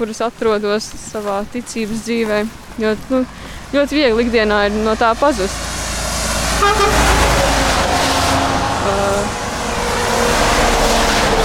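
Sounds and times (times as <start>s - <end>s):
speech: 0.0s - 5.7s, 6.6s - 7.0s
steady roar of road traffic: 0.0s - 11.4s
cars passing: 1.9s - 11.4s
car horn sounding: 6.4s - 11.4s.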